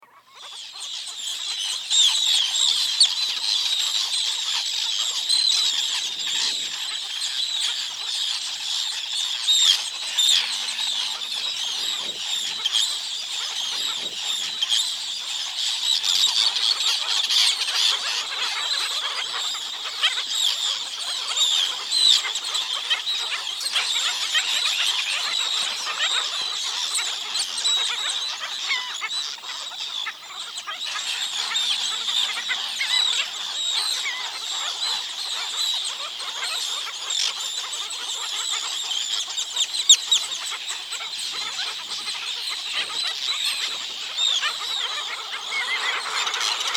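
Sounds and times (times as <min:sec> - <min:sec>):
bird call: 0:00.0 - 0:46.7.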